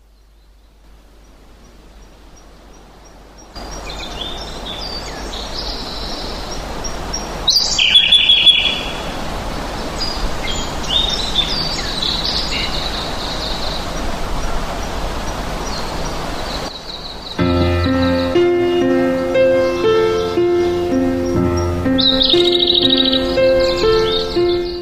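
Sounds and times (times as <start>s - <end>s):
birds chirping over open fields: 3.4s - 24.8s.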